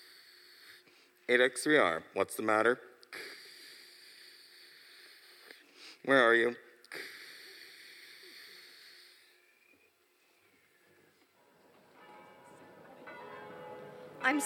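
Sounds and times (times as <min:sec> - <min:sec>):
speech: 0:01.3 - 0:03.3, 0:06.0 - 0:07.1
bells ringing as an evacuation warning in Vancouver Washington: 0:11.4 - 0:14.4.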